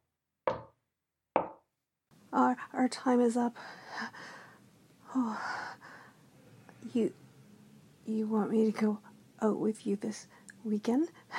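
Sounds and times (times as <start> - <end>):
knocking on a door: 0.5 - 0.7, 1.4 - 1.6
speech: 2.3 - 4.3, 5.2 - 5.8, 6.8 - 7.2, 8.1 - 11.3.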